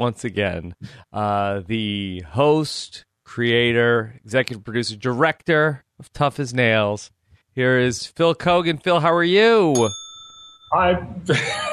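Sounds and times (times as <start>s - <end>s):
speech: 0.0s - 10.0s, 10.7s - 11.7s
bell ringing with a clear metallic tone: 9.7s - 11.5s
laughter: 11.2s - 11.7s.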